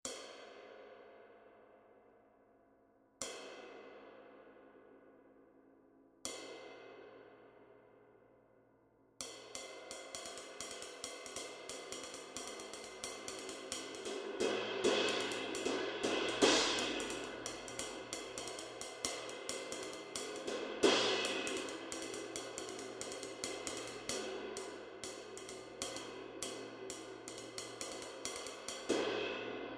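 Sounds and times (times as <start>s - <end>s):
20-inch ultra dry ride cymbal: 9.6s - 29.7s.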